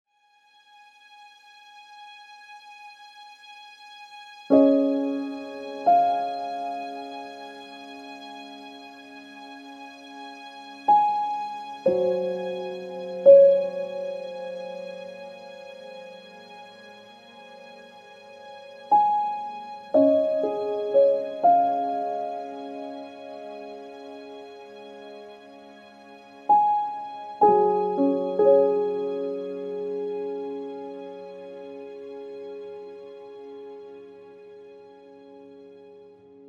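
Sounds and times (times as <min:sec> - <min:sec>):
thoughtful piano music: 0:04.5 - 0:09.2, 0:10.8 - 0:16.6, 0:18.9 - 0:34.4.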